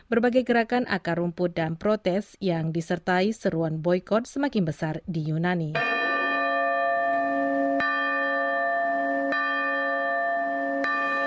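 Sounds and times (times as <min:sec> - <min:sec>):
speech: 0:00.1 - 0:06.0
church bells ringing in Greece: 0:05.8 - 0:11.2.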